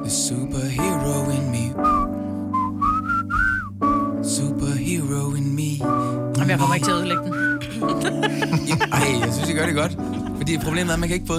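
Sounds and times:
speech: 0.1s - 2.2s, 4.3s - 11.3s
person whistling a tune: 1.8s - 4.3s, 5.8s - 6.2s, 7.0s - 7.8s
laughter: 7.7s - 11.2s.

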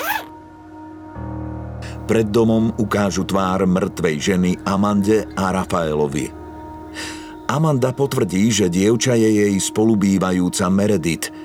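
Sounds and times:
zipper closing a heavy body bag: 0.0s - 0.3s
low drone: 0.8s - 8.9s
speech: 2.1s - 6.4s, 7.0s - 11.4s.

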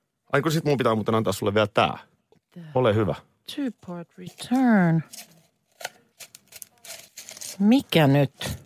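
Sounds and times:
speech: 0.3s - 6.0s, 7.6s - 8.6s
small envelope being torn open: 5.1s - 7.9s.

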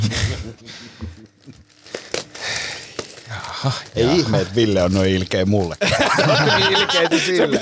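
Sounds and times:
speech: 0.1s - 1.1s, 3.6s - 7.6s
gift wrapping paper crinkling and tearing: 1.2s - 6.6s
laughter: 5.8s - 7.6s.

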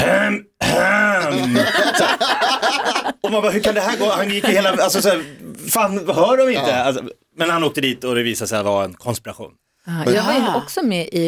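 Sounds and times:
person imitating coded throat clearing: 0.0s - 2.0s
laughter: 1.0s - 7.0s
speech: 2.2s - 11.2s.

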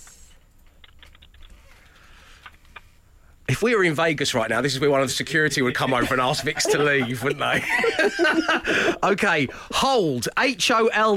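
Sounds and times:
low steady hum: 0.0s - 11.0s
typing on a computer keyboard: 0.6s - 1.6s
speech: 3.5s - 11.1s
laughter: 5.6s - 9.7s.

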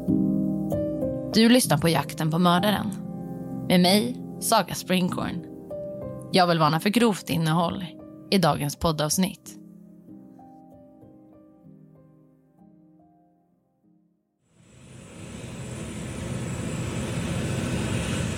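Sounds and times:
soft melodic music: 0.0s - 14.2s
speech: 1.3s - 3.0s, 3.7s - 5.5s, 6.3s - 9.6s
passenger jet airliner taking off from Barcelona airport: 14.6s - 18.3s.

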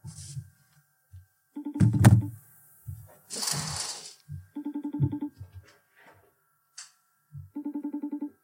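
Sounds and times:
phone ringing tone in warbling bursts: 1.6s - 2.3s, 4.5s - 5.4s, 7.5s - 8.4s
thumps: 1.8s - 3.8s.

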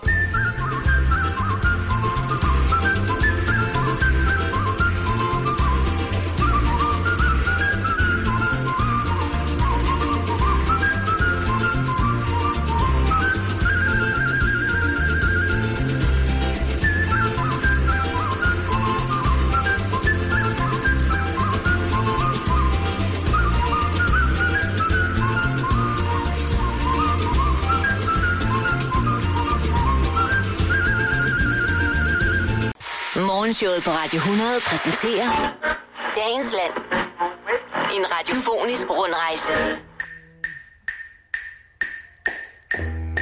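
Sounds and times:
person whistling a bright lilting melody: 0.0s - 16.0s, 16.8s - 32.7s
full steady musical backing: 0.0s - 35.4s, 36.1s - 43.2s
speech: 33.6s - 35.6s, 36.2s - 36.8s, 38.0s - 39.9s.

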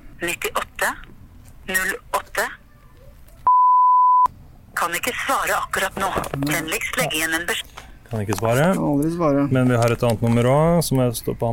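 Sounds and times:
speech: 0.2s - 1.0s, 5.3s - 11.5s
telephone tone while a number is being dialled: 3.5s - 4.3s.

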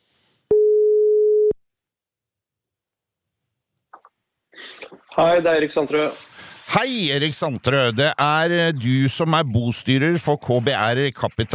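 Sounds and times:
telephone ringback tone: 0.5s - 1.6s
speech: 5.2s - 11.5s.

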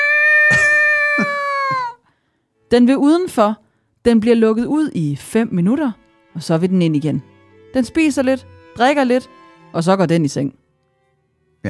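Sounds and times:
hungry house cat meowing loudly on a staircase: 0.0s - 1.9s
speech: 2.7s - 10.6s.

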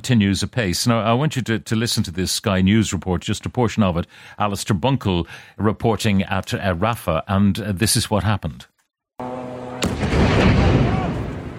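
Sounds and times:
speech: 0.0s - 8.7s
airstrike explosion near a hospital by the Egyptian border: 9.8s - 11.5s.

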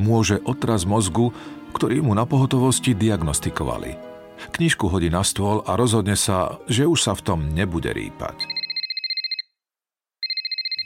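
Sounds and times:
speech: 0.0s - 8.6s
telephone ringing with trilling electronic warble: 8.4s - 9.4s, 10.2s - 10.8s.

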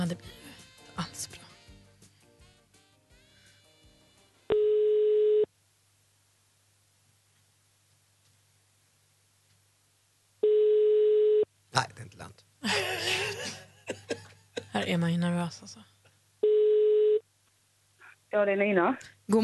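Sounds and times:
speech: 0.0s - 0.4s, 14.9s - 15.9s, 18.3s - 19.4s
telephone ringing tone: 4.5s - 5.5s, 10.4s - 11.5s, 16.4s - 17.2s
people laughing and chuckling: 12.6s - 14.8s.

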